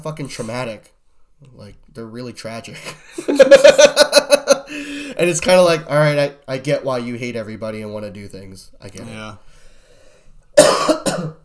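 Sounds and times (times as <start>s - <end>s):
speech: 0.0s - 9.5s
harsh congested sinus coughs: 10.6s - 11.4s.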